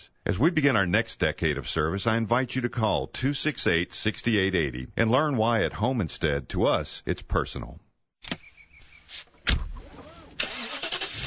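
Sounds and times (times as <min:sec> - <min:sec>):
speech: 0:00.2 - 0:08.4
car engine cranking, catching and settling into a rumbling idle: 0:09.5 - 0:11.2.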